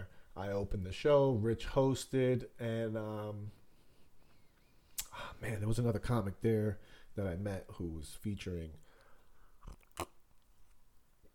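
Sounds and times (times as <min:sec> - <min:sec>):
speech: 0:00.4 - 0:03.6, 0:05.2 - 0:08.8, 0:09.7 - 0:10.1
person slurping a drink: 0:09.6 - 0:10.2.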